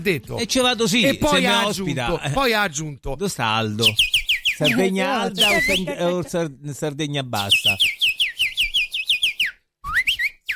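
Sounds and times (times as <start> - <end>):
speech: 0.0 - 8.0
person whistling an imitation of goldfinch song: 3.8 - 6.0, 7.4 - 10.5
laughter: 4.7 - 6.5.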